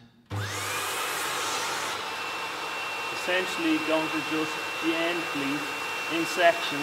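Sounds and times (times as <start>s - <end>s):
vacuum cleaner with a wide nozzle cleaning hanging curtains: 0.3s - 6.8s
speech: 3.2s - 6.8s.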